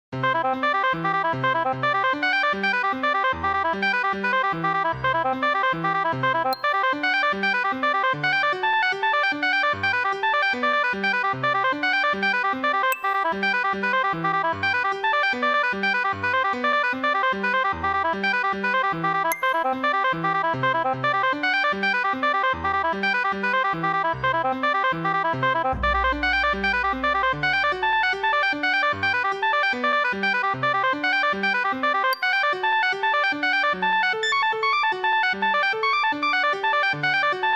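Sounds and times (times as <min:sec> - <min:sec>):
oboe with other instruments: 0:00.3 - 0:37.5.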